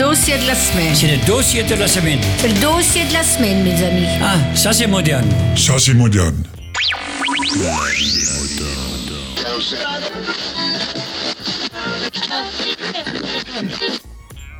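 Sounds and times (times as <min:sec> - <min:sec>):
speech: 0:00.2 - 0:08.4, 0:09.5 - 0:11.0, 0:12.0 - 0:14.1
short busy electronic podcast opening theme jingle: 0:03.4 - 0:09.5.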